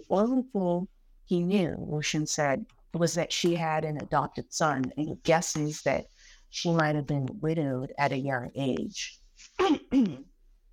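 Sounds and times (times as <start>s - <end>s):
speech: 0.1s - 10.3s
person clearing throat: 9.6s - 10.3s.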